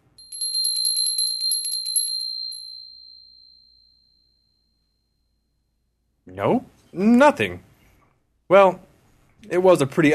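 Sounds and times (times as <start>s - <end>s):
small bell ringing: 0.0s - 5.9s
speech: 6.3s - 7.7s, 8.5s - 10.1s.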